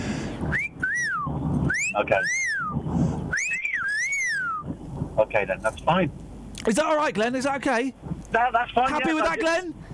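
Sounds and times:
person whistling with the mouth in a wolf-whistle pattern: 0.5 - 4.7
speech: 2.0 - 2.5, 5.2 - 9.8.

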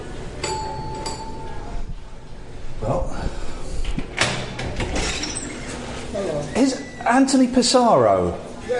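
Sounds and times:
steady room noise: 0.0 - 8.7
door opening with a rattling scrape: 3.8 - 7.2
speech: 6.6 - 8.7.

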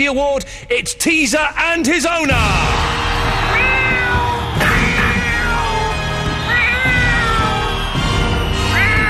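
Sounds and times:
speech: 0.0 - 4.4
cat meowing: 3.5 - 9.0.

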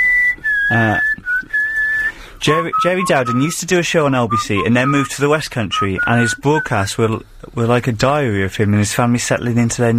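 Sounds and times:
person whistling a tune: 0.0 - 6.9
speech: 0.7 - 1.2, 2.4 - 9.9
low buzzy voiced sound: 2.4 - 3.6, 4.2 - 6.9.

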